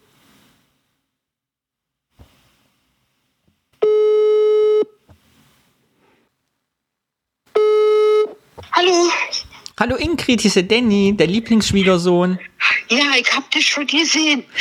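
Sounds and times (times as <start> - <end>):
telephone ringback tone while a call is placed: 3.8 - 4.9, 7.6 - 8.4
speech: 9.8 - 14.5.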